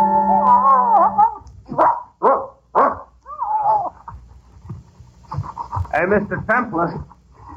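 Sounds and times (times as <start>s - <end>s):
dog howling: 0.2s - 1.4s, 2.8s - 4.0s
dog whining: 0.2s - 4.2s
dog barking: 1.1s - 3.1s
speech: 6.1s - 7.1s.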